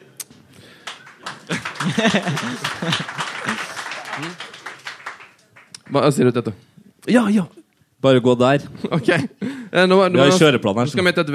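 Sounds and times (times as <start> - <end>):
small crowd of audience clapping quickly: 0.6 - 6.2
laughter: 1.1 - 5.2
speech: 1.9 - 3.6, 4.2 - 4.5, 5.9 - 11.3.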